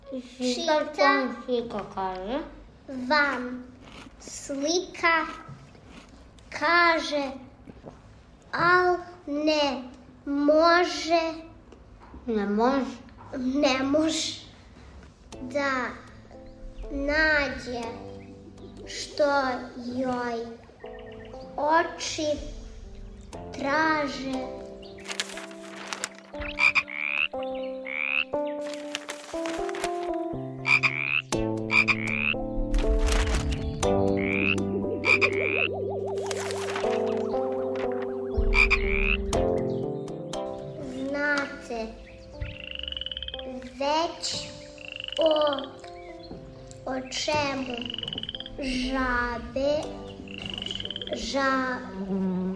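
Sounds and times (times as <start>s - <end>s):
speech: 0.2s - 5.5s, 6.5s - 11.5s, 12.2s - 14.4s, 15.4s - 16.0s, 16.9s - 18.1s, 18.8s - 20.6s, 21.6s - 22.6s, 23.4s - 24.6s, 51.3s - 52.3s
chorus of frogs croaking: 16.1s - 19.9s, 26.2s - 29.8s, 30.4s - 40.6s, 42.0s - 52.5s.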